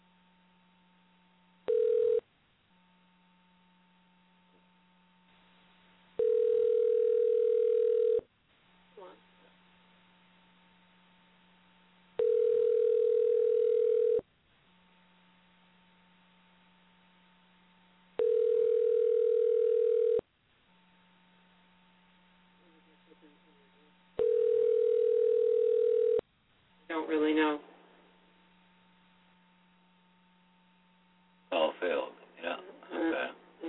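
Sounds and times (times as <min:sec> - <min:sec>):
faint low hum: 0:00.0 - 0:33.6
telephone line tone after dialing: 0:01.7 - 0:02.2, 0:06.2 - 0:08.3, 0:12.2 - 0:14.2, 0:18.2 - 0:20.2, 0:24.2 - 0:26.2.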